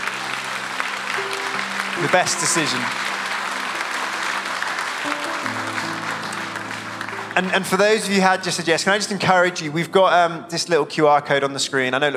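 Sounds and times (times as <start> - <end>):
large crowd applause: 0.0 - 10.1
sustained musical tones: 0.0 - 11.2
speech: 2.0 - 3.1, 7.4 - 12.1.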